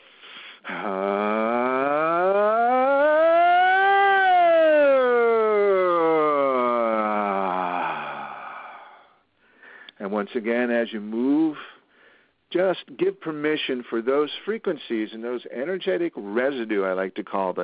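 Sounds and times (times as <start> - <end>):
speech: 0.6 - 1.1, 10.2 - 11.8, 12.6 - 17.6
voice imitating a siren during a vocal exercise: 0.7 - 8.4.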